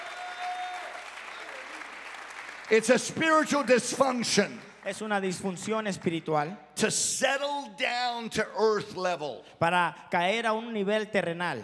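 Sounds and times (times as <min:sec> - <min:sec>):
congregation clapping hands during a church sermon: 0:00.0 - 0:06.1
speech: 0:02.7 - 0:11.6.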